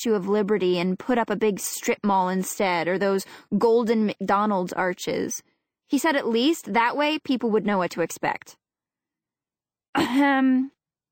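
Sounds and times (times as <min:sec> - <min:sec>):
speech: 0:00.0 - 0:08.6, 0:10.0 - 0:10.8
woman clearing throat: 0:10.0 - 0:10.7.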